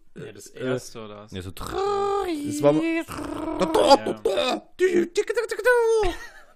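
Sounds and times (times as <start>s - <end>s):
speech: 0.2s - 6.4s
person vocally imitating a dial-up modem connection handshake: 1.6s - 5.0s.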